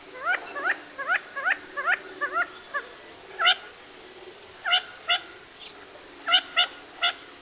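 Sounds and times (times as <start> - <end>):
steady background hiss: 0.0 - 7.4
Gambel's quail calling short nasal notes: 0.2 - 3.7, 4.6 - 5.3, 6.2 - 7.3.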